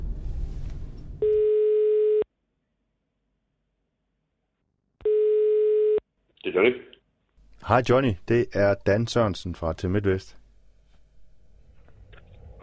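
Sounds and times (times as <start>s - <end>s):
telephone ringback tone on an outgoing call: 1.2s - 2.2s, 5.0s - 6.0s
speech: 6.6s - 7.0s, 7.7s - 10.4s.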